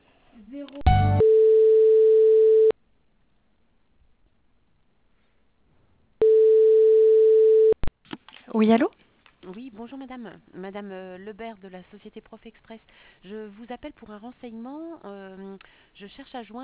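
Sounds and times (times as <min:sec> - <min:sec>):
speech: 0:00.4 - 0:00.9, 0:08.6 - 0:16.6
telephone beeps while a call is transferred: 0:00.9 - 0:02.7, 0:06.2 - 0:07.8.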